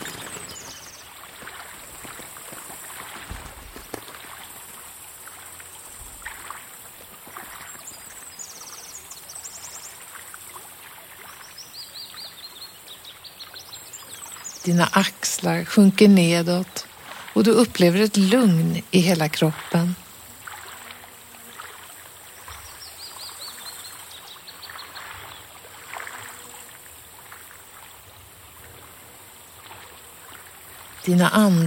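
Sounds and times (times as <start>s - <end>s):
bird wings flapping: 0.0s - 4.6s
babbling stream water rushing: 0.0s - 9.0s, 14.7s - 22.9s, 23.5s - 31.6s
birds splashing and bathing in a babbling stream: 0.0s - 31.6s
speech: 14.6s - 20.0s, 31.1s - 31.6s.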